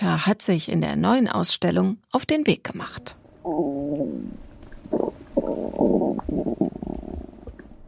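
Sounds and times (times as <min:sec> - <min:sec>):
speech: 0:00.0 - 0:06.5
stomach and digestive tract gurgling: 0:03.4 - 0:07.8.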